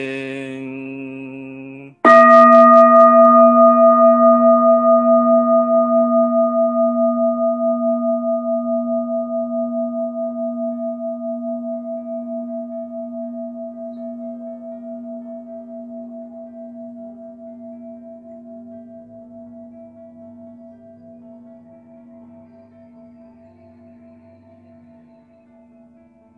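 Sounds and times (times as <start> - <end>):
mindfulness meditation bell struck and ringing: 2.1 - 26.3.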